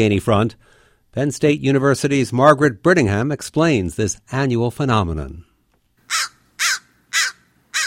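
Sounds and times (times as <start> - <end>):
speech: 0.0 - 5.5
crow cawing at a roost: 6.0 - 7.8.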